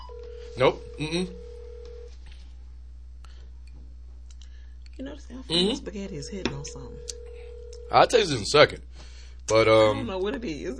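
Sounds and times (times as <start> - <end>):
brief steady phone tone: 0.0 - 2.1, 6.6 - 8.2
constant low electrical hum: 0.0 - 10.7
speech: 0.6 - 1.4, 5.0 - 10.7.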